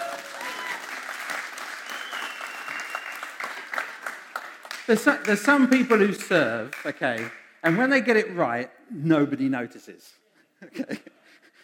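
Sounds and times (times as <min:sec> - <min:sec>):
room full of people clapping: 0:00.0 - 0:07.9
speech: 0:04.9 - 0:11.2.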